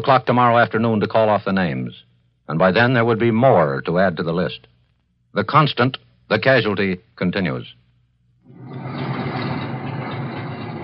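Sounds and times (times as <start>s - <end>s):
speech: 0.0s - 4.7s, 5.3s - 7.8s
four-engine transport plane carrying wounded into an airfield near Washington: 8.5s - 10.8s.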